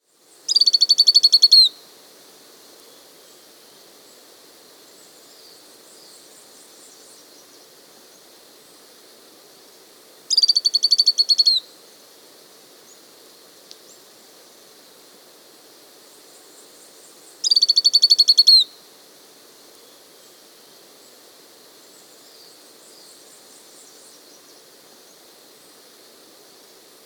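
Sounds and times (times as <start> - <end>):
Lemon-browed flycatcher Conopias cinchoneti calling in the Andes: 0.5 - 1.7, 10.3 - 11.7, 17.4 - 18.7.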